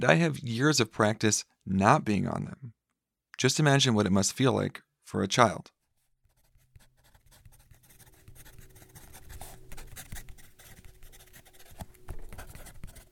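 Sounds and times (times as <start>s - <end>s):
speech: 0.0s - 2.8s, 3.4s - 5.8s
number 3 pencil scratching across paper: 6.3s - 13.1s.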